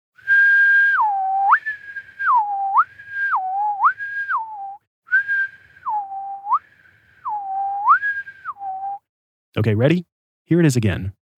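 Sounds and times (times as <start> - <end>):
person whistling a two-note tune: 0.2 - 9.1
speech: 9.6 - 11.2.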